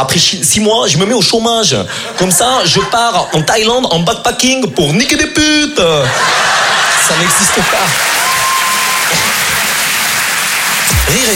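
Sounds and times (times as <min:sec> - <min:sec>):
speech: 0:00.0 - 0:08.2, 0:11.1 - 0:11.3
laughter: 0:01.9 - 0:03.9, 0:05.9 - 0:08.4, 0:09.0 - 0:11.3
comedy show audience applause: 0:06.2 - 0:11.3.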